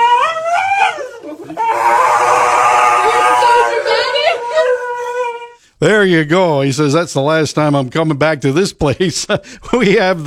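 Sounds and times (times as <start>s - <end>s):
dog howling and whining as a groomer clips its nail: 0.0s - 5.6s
speech: 5.8s - 10.2s.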